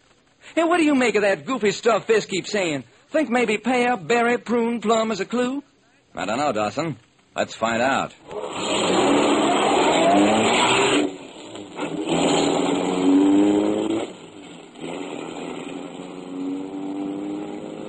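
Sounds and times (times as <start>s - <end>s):
speech: 0.6s - 8.5s
car driving with engine roaring: 8.2s - 17.8s.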